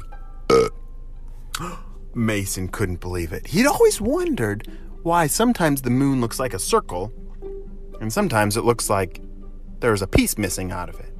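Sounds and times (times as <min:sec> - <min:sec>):
short loud buzzy burp: 0:00.5 - 0:00.8
speech: 0:01.6 - 0:07.2, 0:08.0 - 0:11.1.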